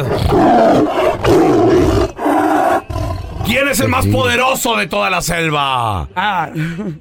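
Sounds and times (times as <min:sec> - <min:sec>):
speech: 0:00.0 - 0:01.0, 0:03.5 - 0:06.9
tiger roaring: 0:00.0 - 0:03.5.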